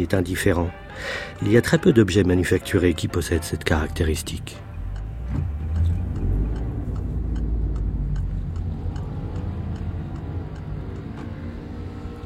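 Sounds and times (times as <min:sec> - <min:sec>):
speech: 0:00.0 - 0:04.7
road noise from a large grey BMW 520d E39 estate car: 0:00.0 - 0:12.2
faint ticking: 0:04.5 - 0:11.4
large grey BMW 520d E39 estate car engine rumble: 0:04.6 - 0:12.2.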